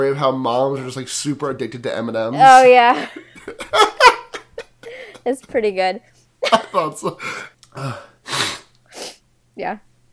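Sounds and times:
speech: 0:00.0 - 0:04.0, 0:05.2 - 0:08.1, 0:09.6 - 0:09.9
laughter: 0:03.0 - 0:05.5, 0:06.4 - 0:07.5
brief voiced throaty grunts: 0:07.2 - 0:08.6
sniffling: 0:07.2 - 0:09.2.

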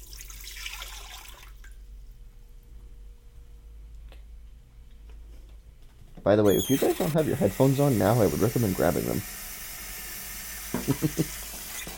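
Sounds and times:
water pouring into a pressure cooker pot: 0:00.0 - 0:01.8
speech: 0:06.2 - 0:09.4, 0:10.9 - 0:11.4.

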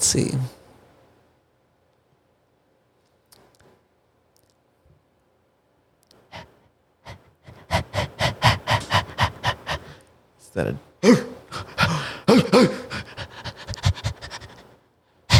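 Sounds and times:
speech: 0:00.0 - 0:00.6
person imitating a panting dog in a studio: 0:06.3 - 0:10.0, 0:11.0 - 0:15.3.

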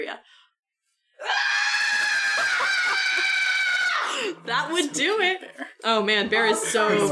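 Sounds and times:
speech: 0:00.0 - 0:00.4, 0:04.4 - 0:07.0
human voice imitating the shrieking cry of a devil bird: 0:01.2 - 0:04.3.

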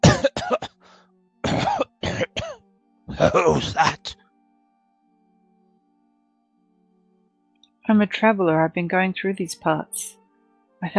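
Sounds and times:
rough harsh throaty coughs: 0:00.0 - 0:00.8, 0:01.4 - 0:04.2
speech: 0:03.2 - 0:04.2, 0:07.9 - 0:10.2, 0:10.8 - 0:10.9.

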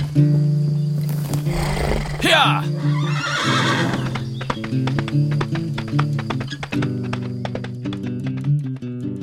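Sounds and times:
speech: 0:00.1 - 0:00.5, 0:02.3 - 0:02.9
horse hooves clip-clopping: 0:01.0 - 0:09.1
horse neighing: 0:01.5 - 0:04.5.

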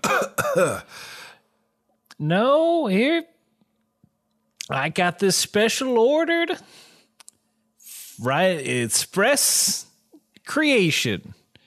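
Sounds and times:
light cough: 0:00.0 - 0:00.9
speech: 0:00.2 - 0:01.1, 0:02.2 - 0:03.3, 0:04.7 - 0:06.9, 0:08.2 - 0:09.9, 0:10.5 - 0:11.4.

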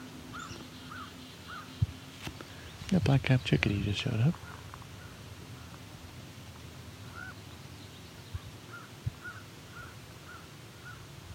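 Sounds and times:
low outdoor rumble: 0:00.0 - 0:11.3
crow cawing: 0:00.3 - 0:01.7, 0:07.0 - 0:07.4, 0:08.7 - 0:11.1
speech: 0:02.9 - 0:04.5.

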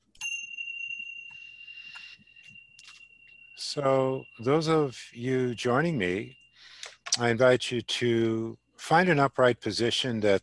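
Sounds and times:
meditation bell struck to begin a meditation: 0:00.0 - 0:07.8
speech: 0:03.7 - 0:06.4, 0:07.2 - 0:10.4.

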